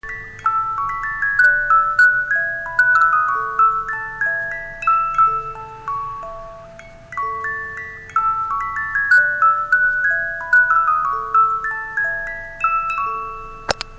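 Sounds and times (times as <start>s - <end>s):
carousel horse music melody: 0.0s - 13.9s.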